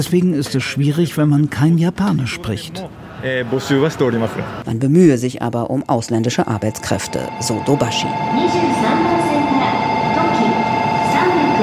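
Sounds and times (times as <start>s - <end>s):
speech: 0.0s - 9.2s
constant mechanical hum of train: 2.6s - 11.6s
loud rumble inside a moving train carriage: 6.0s - 11.6s.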